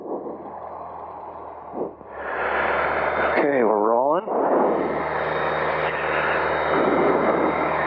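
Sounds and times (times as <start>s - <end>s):
small single-engine propeller airplane engine droning while taking off: 0.0s - 7.8s
brief radio-like voice: 3.4s - 4.3s.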